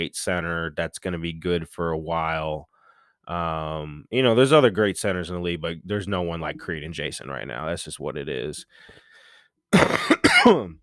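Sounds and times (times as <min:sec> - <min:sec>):
speech: 0:00.0 - 0:02.7, 0:03.3 - 0:09.0, 0:09.7 - 0:10.8
harsh coughs into the microphone: 0:09.7 - 0:10.8.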